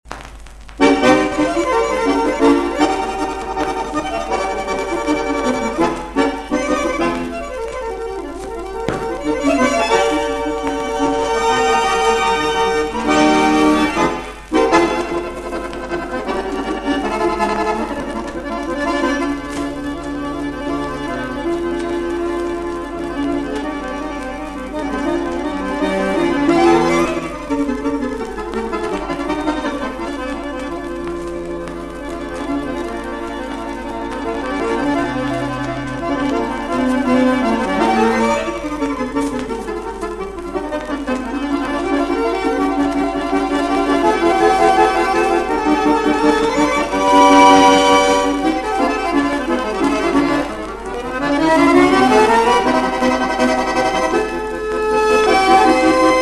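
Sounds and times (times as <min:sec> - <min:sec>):
accordion music: 0:00.1 - 0:56.1.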